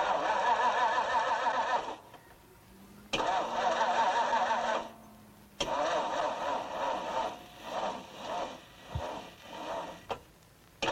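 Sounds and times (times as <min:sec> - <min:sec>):
old used car engine cranking, sputtering and running: 0:00.0 - 0:10.9.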